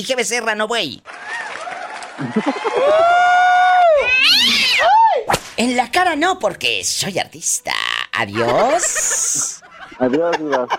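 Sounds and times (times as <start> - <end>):
speech: 0.0 - 1.4, 2.2 - 3.4, 4.1 - 10.7
laughter: 2.0 - 3.2, 8.3 - 10.7
cat meowing and yowling: 4.0 - 4.8.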